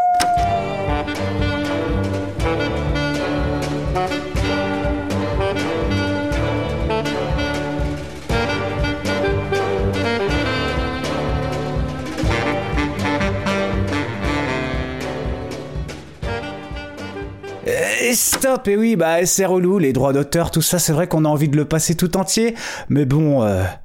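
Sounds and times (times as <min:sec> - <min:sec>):
full instrumental music mix with steady beat and layered sustained tones: 0:00.1 - 0:17.7
speech: 0:18.4 - 0:23.8.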